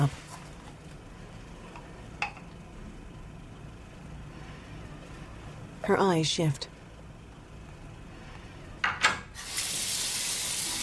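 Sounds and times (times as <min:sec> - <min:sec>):
speech: 0:05.9 - 0:06.8
water running from a sink tap while washing hands: 0:09.4 - 0:10.8.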